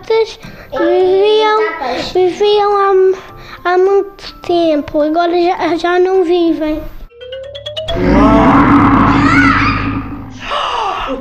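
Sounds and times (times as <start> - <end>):
speech: 0.1 - 7.0
child growling like a bear: 7.9 - 10.5
child whining: 9.1 - 10.1.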